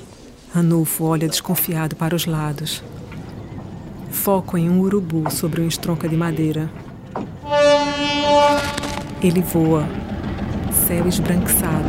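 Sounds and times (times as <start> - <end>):
speech: 0.5 - 3.1, 4.2 - 7.3, 8.3 - 10.0, 10.9 - 11.8
train rumbling and clattering on the rail line approaching a station: 2.8 - 11.8
train horn blaring: 7.4 - 10.0.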